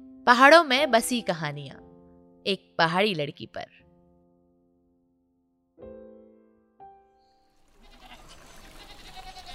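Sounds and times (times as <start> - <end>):
speech: 0.3 - 1.8, 2.4 - 3.8
herd of goats bleating: 7.8 - 9.5.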